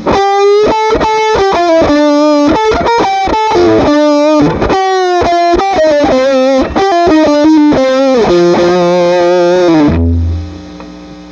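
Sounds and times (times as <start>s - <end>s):
Guild guitar through a 1984 treble booster pedal: 0.0s - 11.3s.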